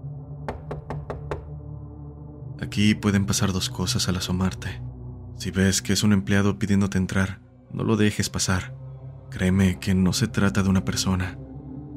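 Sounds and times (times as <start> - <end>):
knocking on a door: 0.5 - 1.6
speech: 2.6 - 11.5.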